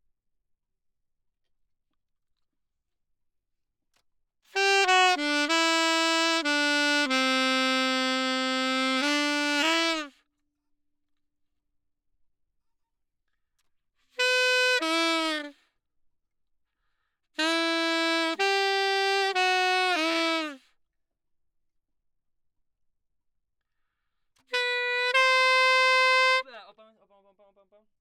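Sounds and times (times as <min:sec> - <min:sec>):
saxophone: 0:04.5 - 0:10.2, 0:14.2 - 0:15.6, 0:17.4 - 0:20.8, 0:24.4 - 0:26.5.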